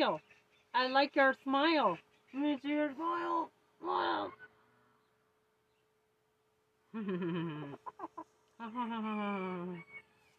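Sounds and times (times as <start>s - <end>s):
speech: 0.0s - 4.4s, 6.9s - 9.9s
chicken clucking: 7.7s - 8.3s.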